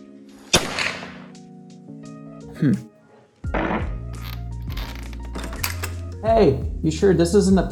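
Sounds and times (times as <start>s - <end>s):
real gunshots sounding small and weak: 0.5s - 1.3s
speech: 2.6s - 2.9s, 6.2s - 7.6s.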